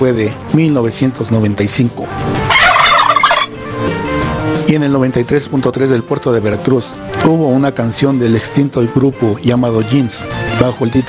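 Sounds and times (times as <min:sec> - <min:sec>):
speech: 0:00.0 - 0:02.4, 0:04.7 - 0:11.0
turkey gobbling: 0:02.5 - 0:03.5.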